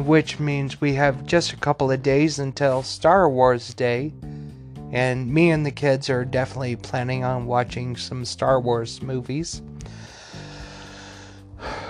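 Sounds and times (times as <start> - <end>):
speech: 0.0 - 10.0
person gasping for breath after talking: 9.8 - 11.8.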